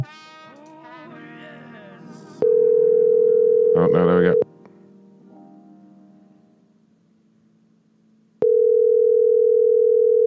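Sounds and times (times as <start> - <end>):
warbling phone line tone of a call being forwarded: 2.4 - 4.4, 8.4 - 10.2
speech: 3.8 - 4.4.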